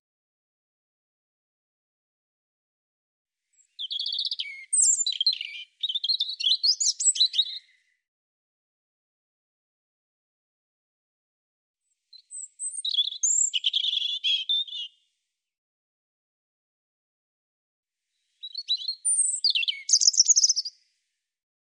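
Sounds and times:
European robin singing: 0:03.6 - 0:07.9, 0:12.1 - 0:15.0, 0:18.3 - 0:20.8.

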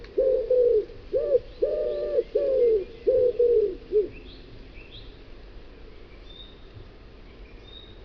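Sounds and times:
common wood pigeon cooing: 0:00.1 - 0:04.2.

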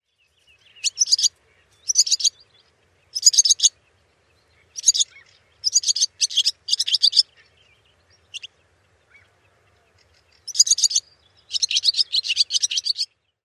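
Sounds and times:
barn swallow twittering chirps: 0:00.5 - 0:09.3, 0:09.9 - 0:13.3.

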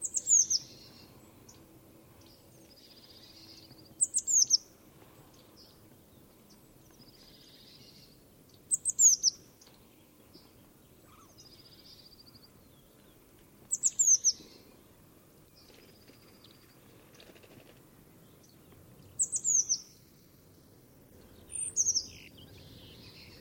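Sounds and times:
bird chirping: 0:00.0 - 0:17.6, 0:18.2 - 0:23.3.

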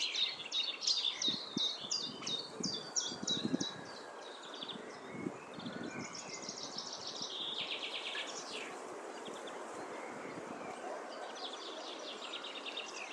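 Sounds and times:
common chaffinch song: 0:00.0 - 0:13.1
steady outdoor background noise: 0:00.0 - 0:13.1.

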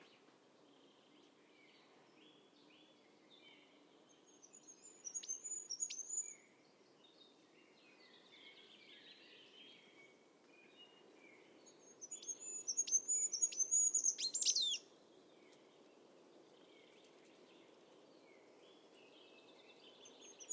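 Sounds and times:
steady low background hiss: 0:00.0 - 0:20.5
high thin bird chirps with sharp downward ticks: 0:12.0 - 0:14.8.

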